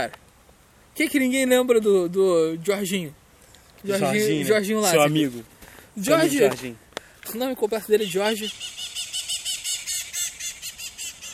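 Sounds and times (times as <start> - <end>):
speech: 0.0 - 0.2, 1.0 - 3.2, 3.8 - 8.9
birds chirping in Rio de Janeiro: 2.7 - 11.3.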